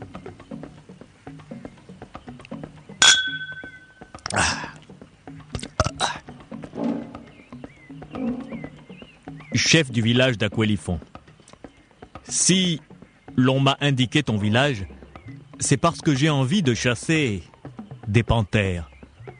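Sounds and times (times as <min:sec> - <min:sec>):
glasses of drink clinking in a toast: 0:03.0 - 0:04.0
louder clattering knocks: 0:06.7 - 0:07.3
speech: 0:09.6 - 0:11.1, 0:12.4 - 0:14.9, 0:15.6 - 0:17.5, 0:18.1 - 0:18.9.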